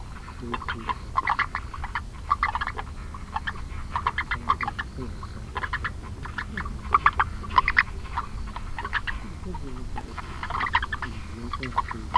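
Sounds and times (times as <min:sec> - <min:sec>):
low background rumble: 0:00.0 - 0:12.1
speech: 0:00.4 - 0:01.0
Rana longicrus long-legged brown frog calling in a vegetable garden beside a pond: 0:00.4 - 0:12.1.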